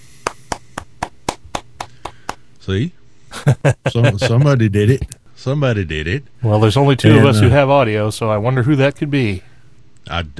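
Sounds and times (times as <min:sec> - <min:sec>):
hands clapping: 0:00.2 - 0:02.5
speech: 0:02.6 - 0:10.3
laughter: 0:03.3 - 0:05.1.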